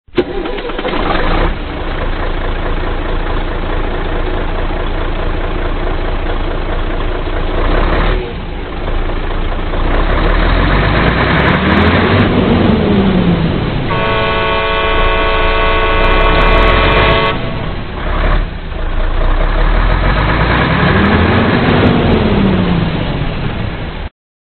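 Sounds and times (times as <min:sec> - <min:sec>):
truck engines: 0:00.1 - 0:24.1
truck horn: 0:13.9 - 0:18.5.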